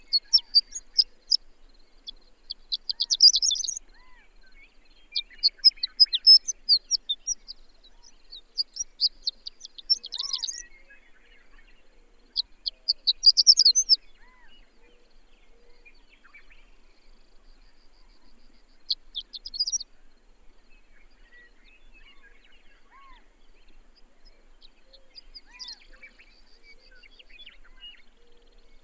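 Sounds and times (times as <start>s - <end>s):
bird song of fast, high chattering notes: 0.0s - 1.4s, 2.0s - 3.8s, 5.1s - 10.7s, 12.3s - 14.5s, 18.2s - 19.8s, 24.9s - 28.8s.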